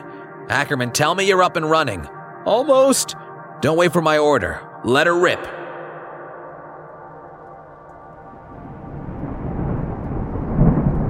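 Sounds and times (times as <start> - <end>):
speech: 0.5 - 5.6
thunder rumbling in a storm: 7.7 - 11.0
heavy rain: 8.0 - 11.0.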